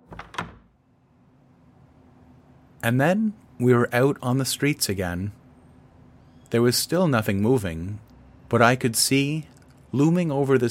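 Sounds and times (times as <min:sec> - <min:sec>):
performers-only door behind a stage opening and closing: 0:00.0 - 0:00.8
speech: 0:02.8 - 0:05.4, 0:06.5 - 0:10.6.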